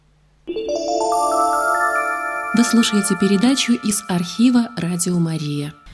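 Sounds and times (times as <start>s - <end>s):
electronic ringtone of a studio call-in line telephone: 0.5s - 5.2s
speech: 2.6s - 5.9s.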